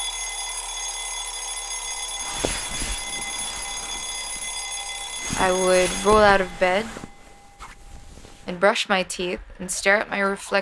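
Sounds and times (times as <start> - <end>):
alarm clock ringing with a shrill electronic tone: 0.0 - 8.6
rustling thump: 2.2 - 8.4
speech: 5.4 - 7.0, 8.5 - 10.6.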